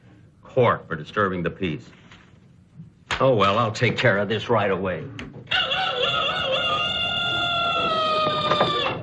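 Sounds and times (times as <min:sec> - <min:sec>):
speech: 0:00.5 - 0:02.1, 0:03.2 - 0:05.3
rooster on a roof crowing: 0:05.5 - 0:09.0.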